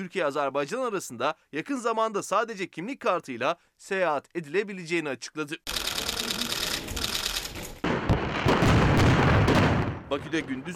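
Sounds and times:
speech: 0:00.0 - 0:06.4, 0:10.1 - 0:10.7
fireworks display bursting: 0:06.6 - 0:10.7.

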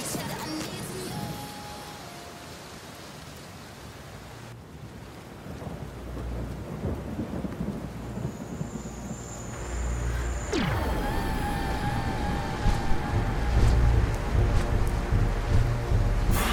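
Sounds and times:
heavy rain: 0:00.0 - 0:16.5
thunder rumbling: 0:04.8 - 0:16.5.

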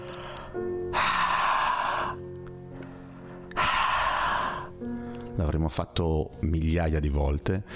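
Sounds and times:
breathy open-mouthed exhales blown toward a hand: 0:00.0 - 0:02.2, 0:02.8 - 0:05.3
speech: 0:05.5 - 0:07.7.

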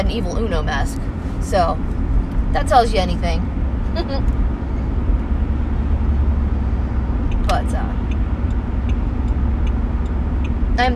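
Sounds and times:
speech: 0:00.0 - 0:04.5, 0:07.5 - 0:08.0, 0:10.8 - 0:10.9
road rumble of a car driving at night: 0:00.0 - 0:10.9
faint regular ticking: 0:07.2 - 0:10.8.

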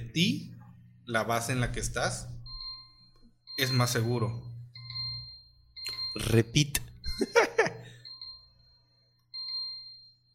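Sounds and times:
speech: 0:00.2 - 0:00.5, 0:01.1 - 0:02.3, 0:03.6 - 0:04.5, 0:06.2 - 0:07.8
phone electronic chime: 0:02.4 - 0:10.3
laughter: 0:07.2 - 0:07.9.

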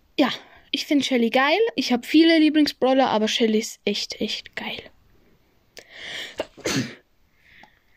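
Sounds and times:
speech: 0:00.2 - 0:04.9, 0:06.0 - 0:07.0
person sneezing: 0:06.2 - 0:07.0.

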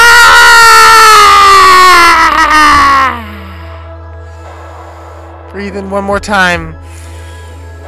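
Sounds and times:
several people screaming loudly on the out-breath: 0:00.0 - 0:03.3
speech: 0:05.8 - 0:06.8.

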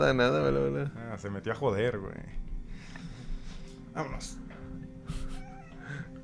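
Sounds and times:
speech: 0:00.0 - 0:03.1, 0:04.0 - 0:04.4
cat meowing: 0:05.3 - 0:06.1.

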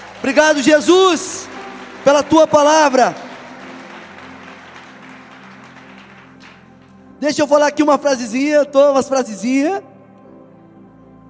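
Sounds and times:
audience applauding: 0:00.0 - 0:07.2
speech: 0:00.2 - 0:03.2, 0:07.2 - 0:09.9.

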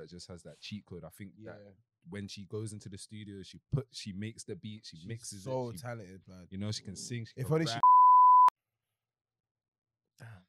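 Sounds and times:
speech: 0:00.0 - 0:07.9
loud steady censor bleep at a single pitch: 0:07.7 - 0:08.5.

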